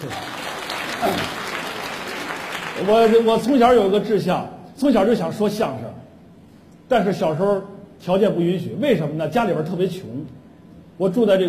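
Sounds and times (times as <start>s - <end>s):
audience applause at a televised talent competition stage: 0.0s - 3.3s
speech: 2.8s - 6.0s, 6.9s - 10.4s, 11.0s - 11.4s.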